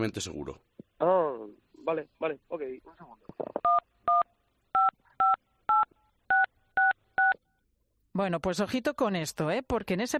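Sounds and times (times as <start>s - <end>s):
speech: 0.0s - 1.2s, 1.9s - 3.9s, 8.2s - 10.1s
telephone touch-tone keypad beeps dialing a bank password: 4.8s - 7.4s.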